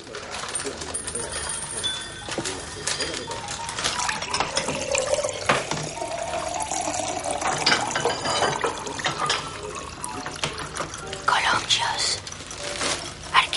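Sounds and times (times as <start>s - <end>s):
water pouring into a glass in a home kitchen: 0.1s - 13.4s
glass clinks and knocks in a home kitchen: 0.4s - 11.3s.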